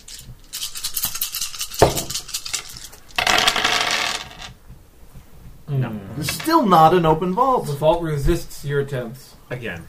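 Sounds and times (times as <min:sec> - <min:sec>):
small hard dice rolled on a table: 0:00.5 - 0:04.5
speech: 0:06.2 - 0:09.8.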